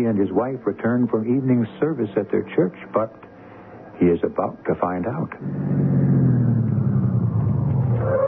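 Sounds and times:
speech: 0:00.0 - 0:03.3, 0:04.0 - 0:06.0
car engine rumbling and idling: 0:05.4 - 0:08.1.

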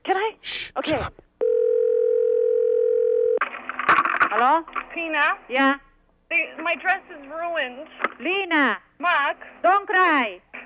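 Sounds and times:
speech: 0:00.8 - 0:01.2, 0:04.4 - 0:10.5
telephone dial tone: 0:01.4 - 0:03.4.

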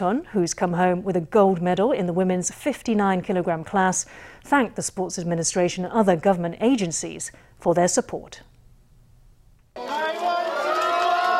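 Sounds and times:
speech: 0:00.0 - 0:08.5
crowd cheering at airport arrival: 0:09.8 - 0:11.3.

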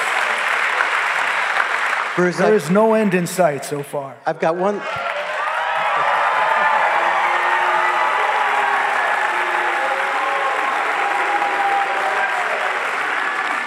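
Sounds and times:
applause: 0:00.0 - 0:03.0, 0:04.8 - 0:13.6
speech: 0:02.2 - 0:05.0
large audience booing: 0:05.0 - 0:13.6.

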